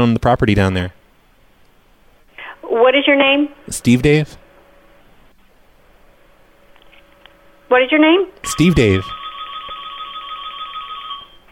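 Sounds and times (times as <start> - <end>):
speech: 0.0 - 1.0, 2.8 - 4.4, 7.7 - 9.2
shrill electronic phone ringtone: 8.5 - 11.5.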